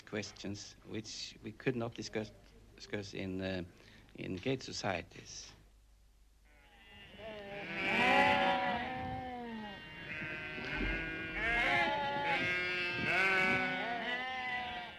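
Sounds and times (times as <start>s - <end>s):
speech: 0.1s - 5.6s
several sheep bleating during shearing: 6.5s - 14.9s.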